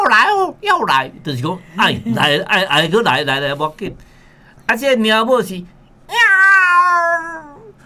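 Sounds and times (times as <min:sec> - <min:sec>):
speech: 0:00.5 - 0:04.1, 0:04.7 - 0:06.2
human voice imitating a cat meowing and yowling: 0:06.1 - 0:07.8.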